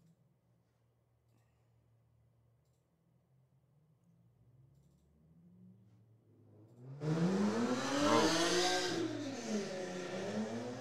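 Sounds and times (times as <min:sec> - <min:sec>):
loud motorcycle or hopped-up car engine revving: 0:06.8 - 0:10.8.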